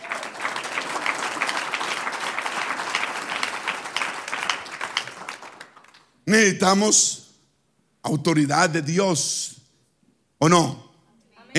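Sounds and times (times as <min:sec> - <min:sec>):
church congregation applauding: 0:00.0 - 0:06.2
speech: 0:06.3 - 0:07.2, 0:08.1 - 0:09.5, 0:10.4 - 0:10.8.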